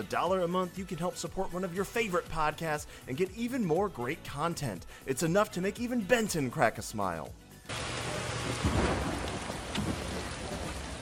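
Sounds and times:
speech: 0.0s - 7.8s
low rumbles of thunder: 7.7s - 11.0s
steady dense rain pouring down: 7.7s - 11.0s.

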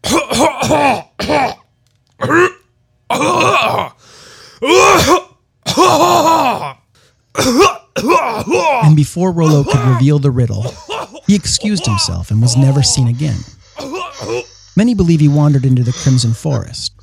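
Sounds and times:
man coughing: 0.0s - 1.6s, 2.2s - 4.0s, 4.6s - 14.6s
speech: 9.0s - 17.0s.

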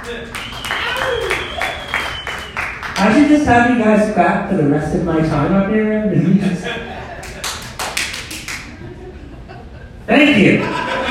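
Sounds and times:
audience applauding at a stand-up comedy set: 0.0s - 3.3s, 7.2s - 8.8s
speech: 0.1s - 1.3s, 3.0s - 6.9s, 10.1s - 11.0s
laughter: 6.2s - 7.8s, 8.6s - 11.0s.

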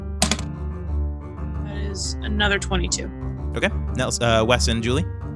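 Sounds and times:
d20 die rolled on a table: 0.2s - 0.5s
speech: 1.9s - 5.2s.

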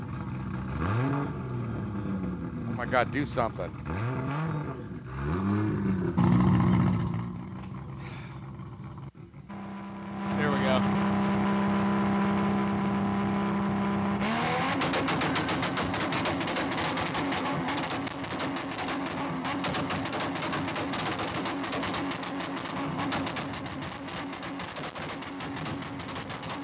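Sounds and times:
car engine tuned for two-stepping holding a steady high rev: 0.0s - 26.6s
speech: 2.8s - 4.2s
car engine popping and crackling backfires: 9.1s - 26.6s.

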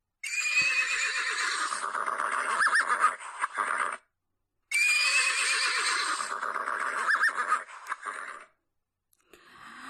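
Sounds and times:
horse whinnying as it kicks a wolf: 0.2s - 4.0s, 4.7s - 8.5s.

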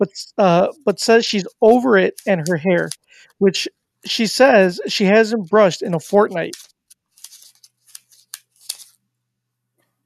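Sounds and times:
speech: 0.0s - 6.7s
paper rustling while counting money: 0.7s - 3.1s, 4.9s - 9.0s.

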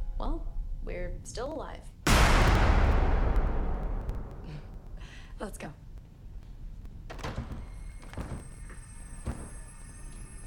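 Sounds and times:
speech: 0.2s - 3.5s, 5.4s - 5.8s
steady low rumble: 2.1s - 7.1s
door being forced open with heavy thuds and cracking impacts: 7.1s - 8.5s.

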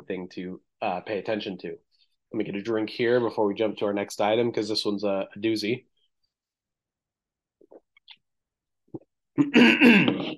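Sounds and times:
speech: 0.1s - 5.9s, 9.4s - 10.3s
man clearing his throat: 9.4s - 10.3s.

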